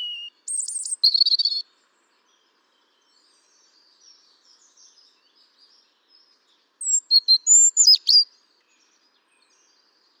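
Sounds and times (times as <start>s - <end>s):
European robin Erithacus rubecula singing high thin whistled notes: 0.0s - 1.6s, 6.8s - 8.2s.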